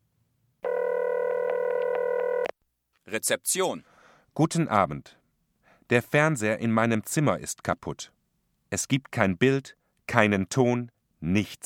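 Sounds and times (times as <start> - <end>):
telephone line tone as a hotel guest calls the front desk: 0.6 - 2.5
speech: 3.1 - 5.2, 5.9 - 11.6.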